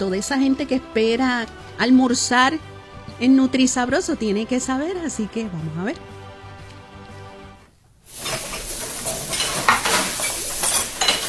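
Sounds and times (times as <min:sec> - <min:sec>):
speech: 0:00.0 - 0:06.2
food sizzling and frying in a pan: 0:08.0 - 0:11.2
utensil stirring and scraping through food in a pan: 0:08.1 - 0:11.2.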